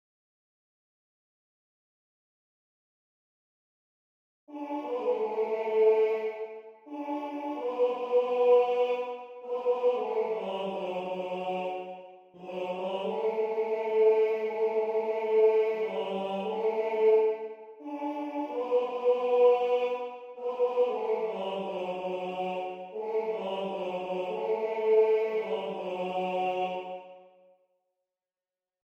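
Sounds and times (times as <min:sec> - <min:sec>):
baritone singing with other voices in TTBB male choir arrangement: 0:04.6 - 0:27.0.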